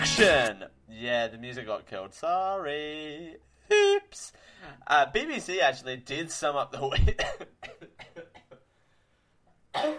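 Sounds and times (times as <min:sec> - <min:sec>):
speech: 0:00.1 - 0:08.1, 0:09.7 - 0:09.9
single loud cough: 0:06.9 - 0:08.6, 0:09.7 - 0:09.9.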